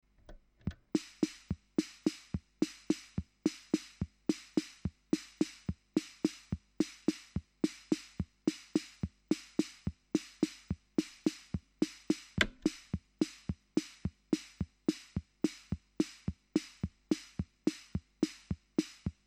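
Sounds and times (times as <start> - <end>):
eko drums: 0.2 - 19.2.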